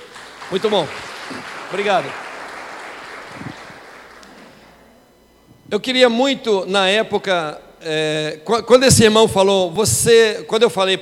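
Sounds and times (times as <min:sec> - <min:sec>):
audience clapping: 0:00.0 - 0:04.8
speech: 0:00.5 - 0:02.2, 0:05.7 - 0:11.0.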